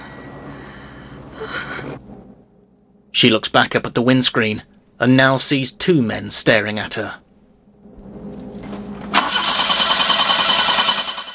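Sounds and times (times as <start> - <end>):
low hum: 0.0 - 11.3
speech: 3.2 - 7.2
car starter cranking, engine failing to start in a car park: 9.1 - 11.3.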